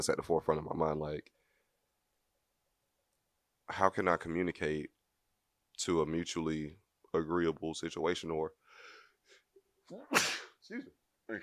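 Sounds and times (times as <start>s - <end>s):
speech: 0.0s - 1.4s, 3.7s - 5.0s, 5.8s - 8.6s, 9.9s - 11.4s
quick inhaled breaths: 8.6s - 9.5s
loud sneeze: 9.9s - 10.6s.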